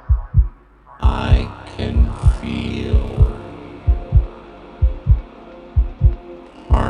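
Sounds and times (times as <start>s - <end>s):
heartbeat lub-dub thumps: 0.0s - 6.8s
rushing noise burst: 0.7s - 6.8s
speech: 1.8s - 2.9s.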